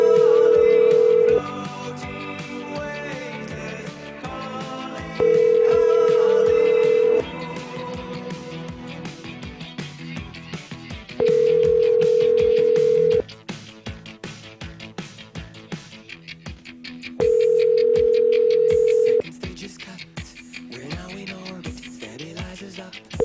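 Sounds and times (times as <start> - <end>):
telephone ringback tone during an outgoing call: 0.0 - 1.4, 5.2 - 7.2, 11.2 - 13.2, 17.2 - 19.2
music: 0.0 - 23.2.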